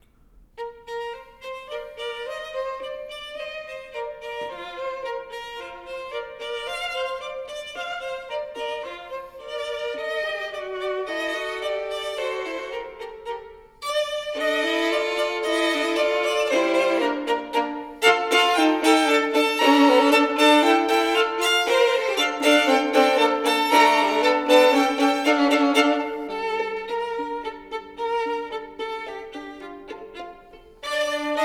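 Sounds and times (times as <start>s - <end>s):
two violins playing a burlesque duo: 0.6s - 31.4s.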